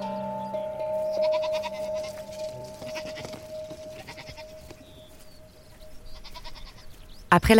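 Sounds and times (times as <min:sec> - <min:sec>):
herd of goats bleating: 0:00.2 - 0:05.1, 0:06.0 - 0:07.0
quiet rustling: 0:00.8 - 0:07.1
speech: 0:07.4 - 0:07.5.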